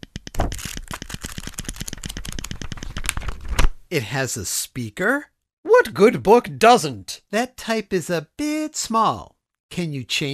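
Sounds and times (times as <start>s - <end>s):
rapid page-rustling sound effect from a Kindle e-reader: 0.3s - 3.7s
speech: 3.9s - 10.3s.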